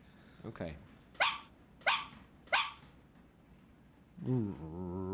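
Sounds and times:
speech: 0.4 - 0.9, 4.2 - 4.9
dog barking: 1.2 - 2.8.

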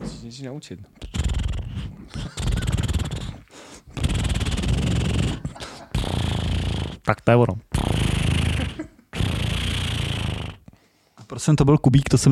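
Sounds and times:
speech: 0.3 - 1.0, 7.1 - 7.7, 11.3 - 12.3
person imitating a cat purring: 1.0 - 7.1, 7.7 - 10.7.

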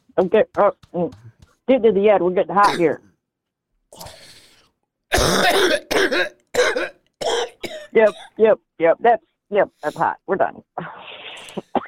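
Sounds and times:
speech: 0.2 - 3.1, 5.2 - 6.3, 8.0 - 11.2
person coughing fit after smoking: 2.6 - 3.0, 5.1 - 8.4, 11.6 - 11.8.

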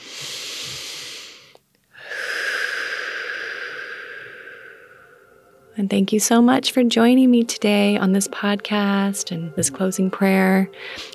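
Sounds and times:
deep slow breath: 0.0 - 5.7
speech: 5.8 - 11.1.

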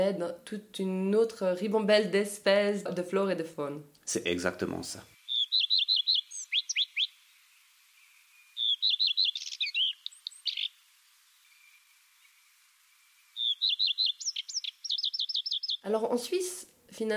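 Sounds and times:
speech: 0.0 - 5.1, 15.9 - 17.1
common redstart singing: 5.2 - 16.0.

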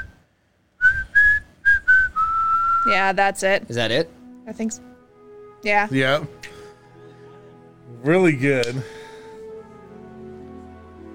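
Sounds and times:
person whistling a slow film theme melody: 0.8 - 2.9
speech: 2.8 - 4.9, 5.6 - 6.4, 8.0 - 9.0.

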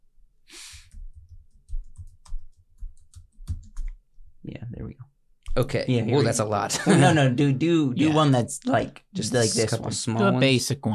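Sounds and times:
typing a web search on a computer keyboard: 1.6 - 4.0
speech: 5.6 - 10.9.

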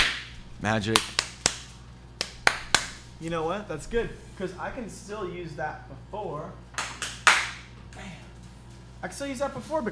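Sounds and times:
sharp hand claps: 0.0 - 3.0, 6.8 - 7.7
speech: 0.6 - 1.2, 3.2 - 6.7, 9.0 - 9.9.

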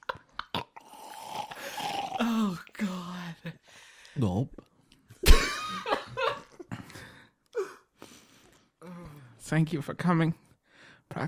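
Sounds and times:
person gulping and swallowing water: 0.1 - 2.7
speech: 2.2 - 5.9, 9.5 - 10.4.

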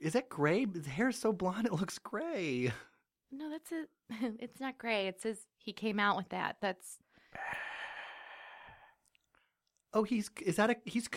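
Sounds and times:
speech: 0.0 - 7.7, 9.9 - 11.1
baby breathing out deeply: 7.2 - 9.0.

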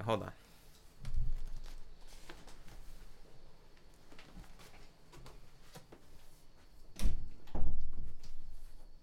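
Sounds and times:
speech: 0.0 - 0.4
door shutting with a solid thud: 7.0 - 8.3.

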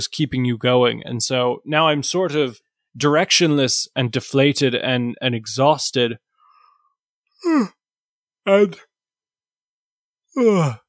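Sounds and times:
speech: 0.0 - 6.3, 7.4 - 7.8, 8.4 - 8.9, 10.4 - 10.8
person yawning: 7.4 - 7.8, 10.3 - 10.8.

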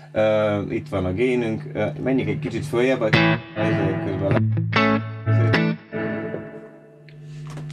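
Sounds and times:
speech: 0.1 - 5.1
electric guitar chords through an amp on the clean channel: 2.2 - 7.7.

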